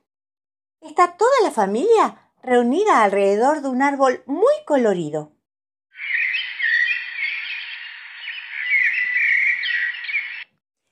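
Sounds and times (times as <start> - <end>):
speech: 0.9 - 5.4
small birds chirping in a tree in a garden: 6.0 - 10.6.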